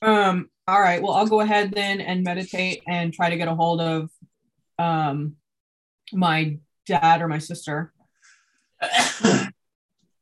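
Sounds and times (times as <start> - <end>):
speech: 0.3 - 4.2, 4.8 - 5.4, 6.1 - 8.0, 8.8 - 9.4
person sneezing: 8.8 - 9.5.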